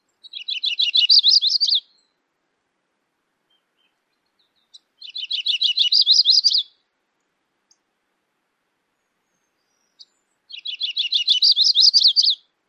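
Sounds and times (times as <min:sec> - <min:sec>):
Audubon's bird songs: 0:00.0 - 0:02.2, 0:03.4 - 0:07.9, 0:08.9 - 0:12.5.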